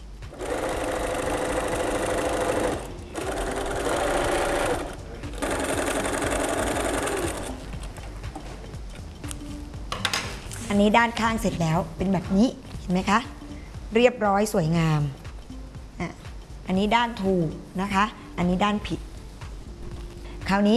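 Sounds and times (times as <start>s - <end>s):
sewing machine stitching cotton or canvas fabric: 0.3s - 7.6s
speech: 10.8s - 15.2s, 16.0s - 19.1s, 20.5s - 20.7s.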